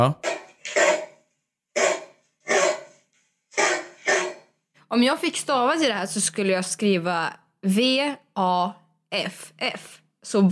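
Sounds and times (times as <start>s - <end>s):
speech: 0.0s - 0.2s, 4.9s - 10.5s
large dog barking deep and gruff: 0.2s - 4.6s.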